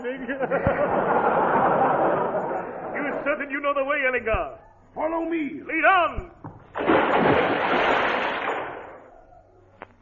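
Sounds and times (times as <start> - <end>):
speech: 0.0 - 1.2, 3.3 - 7.5
laughter: 0.0 - 3.5
splash of a man falling into water: 6.7 - 9.0.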